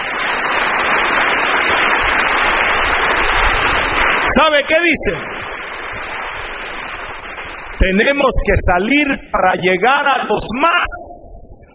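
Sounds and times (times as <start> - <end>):
large crowd clapping: 0.0 - 8.9
speech: 4.3 - 5.4, 7.8 - 11.6.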